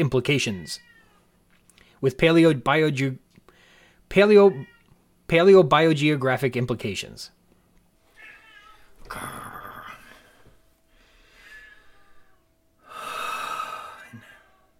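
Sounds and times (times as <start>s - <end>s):
speech: 0.0s - 0.9s, 2.0s - 3.2s, 4.1s - 4.7s, 5.3s - 7.4s, 9.1s - 9.5s
cat yowling: 0.7s - 1.2s, 8.2s - 9.0s, 11.4s - 12.4s
cat mewling: 8.2s - 9.9s, 11.4s - 12.5s.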